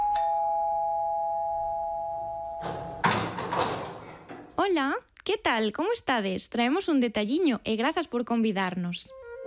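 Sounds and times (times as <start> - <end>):
doorbell ringing with one long steady electronic tone: 0.0 - 3.1
burst of loud broadband clatter and rustling: 2.6 - 4.6
speech: 4.7 - 9.2.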